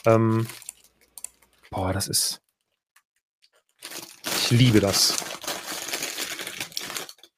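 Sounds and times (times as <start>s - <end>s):
speech: 0.0s - 0.6s, 1.7s - 2.4s, 4.5s - 5.3s
crinkly plastic packaging being torn open: 0.3s - 0.9s, 3.8s - 7.3s.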